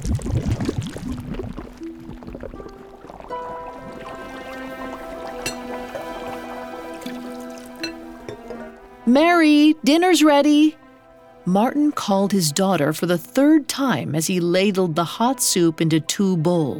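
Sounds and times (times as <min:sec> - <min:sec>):
small bubbles gurgling up through thick liquid: 0:00.0 - 0:08.3
speech: 0:09.1 - 0:10.8, 0:11.4 - 0:16.7.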